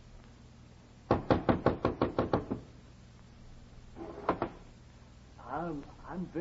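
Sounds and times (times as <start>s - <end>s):
knocking on a door: 1.1s - 2.6s
speech: 5.6s - 6.3s.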